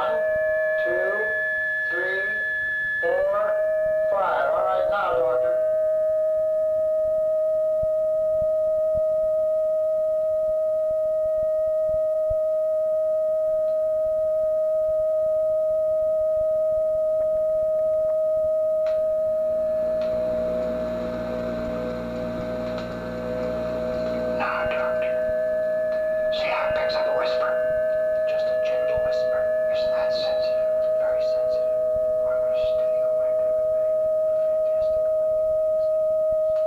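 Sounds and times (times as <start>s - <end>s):
fainter higher electronic tones forming in an energy loop: 0.0s - 8.9s, 18.8s - 36.6s
steady electronic tone from a transceiver feedback device in an energy loop: 0.0s - 36.6s.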